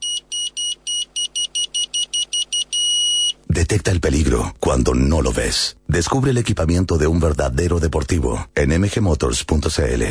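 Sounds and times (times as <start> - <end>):
car reverse parking sensor beeping: 0.0 - 3.4
speech: 3.7 - 10.0.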